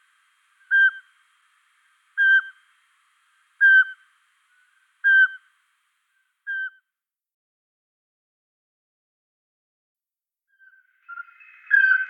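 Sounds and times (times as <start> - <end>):
Eurasian pygmy owl song in Luxembourg: 0.6 - 1.1, 2.2 - 2.6, 3.6 - 4.0, 5.0 - 5.5, 6.5 - 6.8, 10.6 - 12.0.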